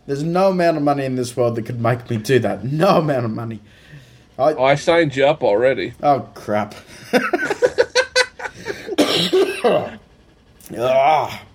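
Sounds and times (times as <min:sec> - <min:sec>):
speech: 0:00.1 - 0:07.6, 0:09.2 - 0:10.0, 0:10.7 - 0:11.5
quick laughter-like bursts: 0:06.9 - 0:09.0
deep chesty cough from a chest cold: 0:08.9 - 0:10.0
rough wheezy hack: 0:10.6 - 0:11.3.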